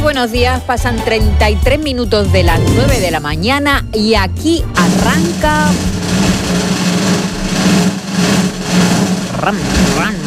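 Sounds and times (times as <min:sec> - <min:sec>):
speech: 0:00.1 - 0:06.7, 0:09.4 - 0:10.2
motorcycle engine revving: 0:04.6 - 0:10.2.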